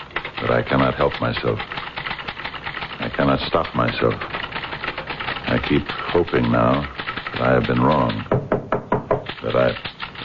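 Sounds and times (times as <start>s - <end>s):
speech: 0.5s - 1.9s, 3.0s - 4.4s, 5.5s - 8.4s, 9.4s - 9.9s
firm knocks on a door: 8.2s - 9.3s.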